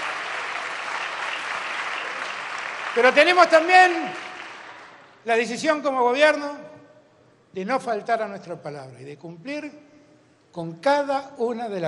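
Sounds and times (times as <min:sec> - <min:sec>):
crowd applauding at a political speech: 0:00.0 - 0:05.2
speech: 0:03.0 - 0:04.2, 0:05.2 - 0:06.7, 0:07.6 - 0:09.9, 0:10.5 - 0:11.8.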